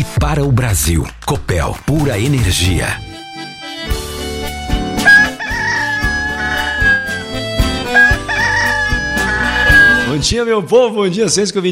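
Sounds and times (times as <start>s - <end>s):
speech: 0.2s - 3.1s, 10.1s - 11.6s
music with steady beats: 3.0s - 10.2s
rooster crowing: 5.0s - 10.2s.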